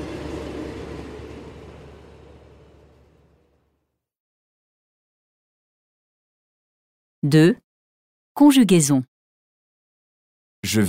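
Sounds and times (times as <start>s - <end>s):
TGV high-speed train pulling away from the station: 0.0s - 3.8s
speech: 7.2s - 7.6s, 8.4s - 9.1s, 10.6s - 10.8s.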